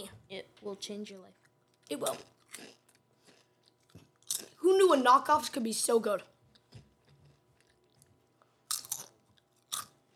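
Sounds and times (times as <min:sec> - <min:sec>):
speech: 0:00.6 - 0:02.8, 0:04.7 - 0:06.3
crisp snack being bitten and chewed: 0:01.4 - 0:04.6, 0:08.7 - 0:10.0.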